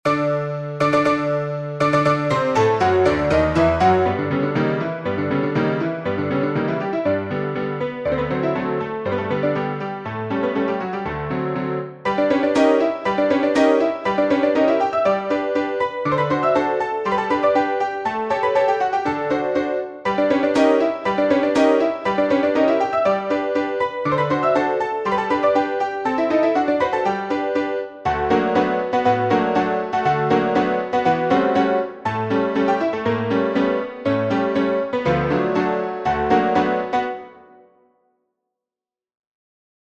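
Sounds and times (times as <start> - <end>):
polka music: 0.1 - 11.0, 11.8 - 37.4.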